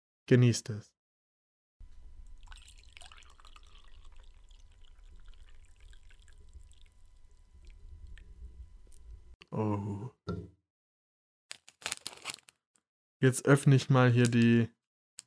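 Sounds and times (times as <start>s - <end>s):
speech: 0.3s - 0.9s, 9.6s - 10.5s, 13.2s - 14.8s
hot water poured into a cup for tea: 2.2s - 8.4s
bubbly gurgle of poured water: 2.2s - 8.6s.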